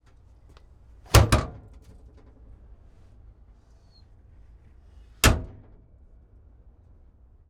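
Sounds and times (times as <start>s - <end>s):
1943 Cromwell tank loader's hatch: 1.1s - 1.9s.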